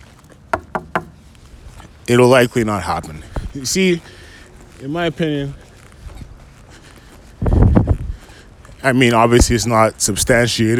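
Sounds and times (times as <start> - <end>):
knuckles knocking on wood: 0.5 - 1.2
speech: 2.1 - 4.2, 4.8 - 5.6, 8.8 - 10.7.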